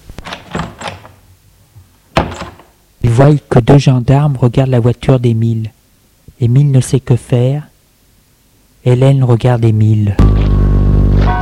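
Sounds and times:
door opening: 0.2 - 1.2, 2.1 - 2.8
speech: 3.0 - 5.8, 6.4 - 7.7, 8.8 - 10.3.

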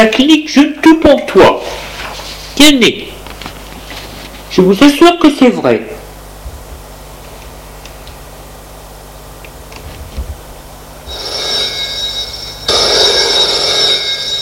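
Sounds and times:
speech: 0.0 - 1.8, 2.6 - 3.1, 4.5 - 6.0
office telephone ringing with a buzzing bell tone: 11.0 - 14.4.

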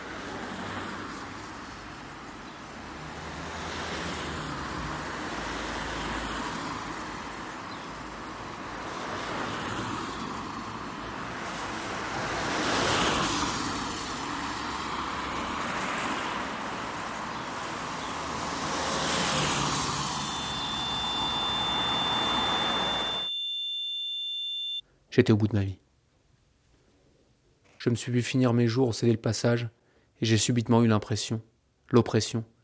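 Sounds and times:
heavy road traffic on a departmental road: 0.0 - 23.3
faint high tone: 19.7 - 24.8
speech: 25.2 - 25.8, 27.8 - 32.6.

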